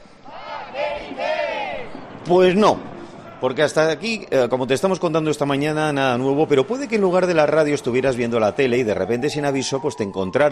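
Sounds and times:
riot crowd shouting and yelling in the street: 0:00.2 - 0:10.5
speech: 0:02.3 - 0:10.5.

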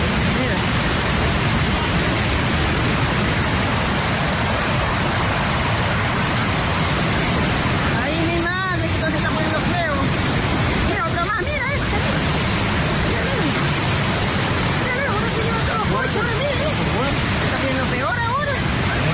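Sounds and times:
ocean wave surging over a pier: 0:00.0 - 0:19.1.

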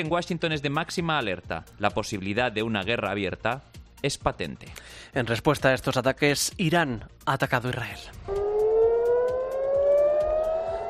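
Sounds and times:
speech: 0:00.0 - 0:08.4
air raid siren wailing in a city: 0:08.3 - 0:10.8.

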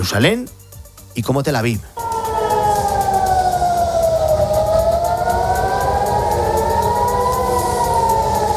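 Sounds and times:
speech: 0:00.0 - 0:00.6, 0:01.2 - 0:02.0
constant rumbling noise: 0:01.9 - 0:08.5
air-raid sirens wailing: 0:02.0 - 0:08.5.

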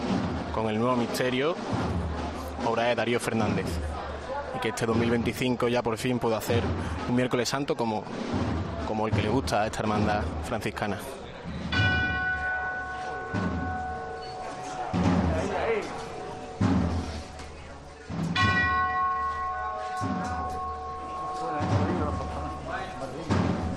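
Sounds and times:
heavy rhythmic thuds: 0:00.0 - 0:04.3, 0:06.5 - 0:07.2, 0:08.0 - 0:10.8, 0:11.4 - 0:23.7
murmur of noise: 0:00.0 - 0:23.7
speech: 0:00.6 - 0:04.0, 0:04.6 - 0:11.2
large bell ringing and echoing in a narrow street: 0:11.7 - 0:23.7.

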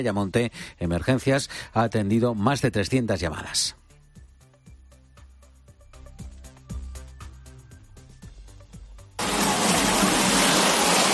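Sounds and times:
speech: 0:00.0 - 0:03.8
music: 0:00.0 - 0:11.1
torrential downpour of rain: 0:09.2 - 0:11.1.

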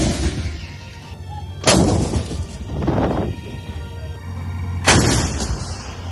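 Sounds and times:
artillery fire during the bombardment of Gaza City: 0:00.0 - 0:00.6, 0:01.6 - 0:02.6, 0:04.8 - 0:06.0.

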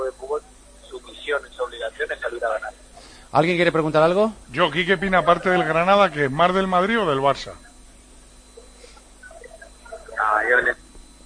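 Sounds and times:
thin voice over a telephone line: 0:00.0 - 0:02.8, 0:04.6 - 0:07.7, 0:09.4 - 0:10.8
speech: 0:01.3 - 0:07.7.

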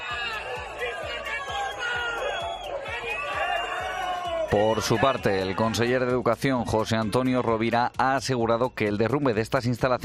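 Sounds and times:
large crowd of local residents booing and jeering: 0:00.0 - 0:07.8
speech: 0:04.5 - 0:10.0.

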